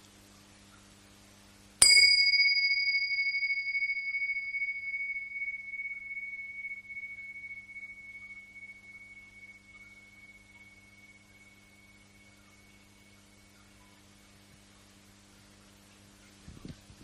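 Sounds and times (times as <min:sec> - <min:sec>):
small bell rung to open meditation: 0:01.8 - 0:13.5.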